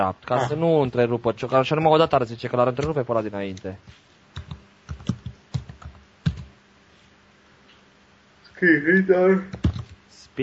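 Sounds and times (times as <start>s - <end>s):
speech: 0.0s - 4.1s, 8.6s - 9.7s
typing on a computer keyboard: 4.4s - 6.5s, 9.5s - 10.0s.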